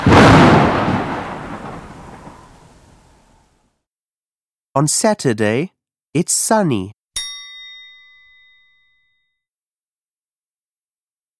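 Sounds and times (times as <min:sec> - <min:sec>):
deep rolling clap of thunder: 0:00.0 - 0:03.6
speech: 0:04.8 - 0:07.0.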